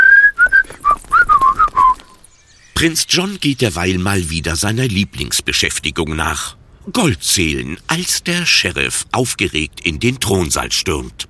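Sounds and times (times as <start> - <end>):
people whistling a lively tune while strolling out of a village: 0.0 - 2.3
speech: 2.8 - 11.2.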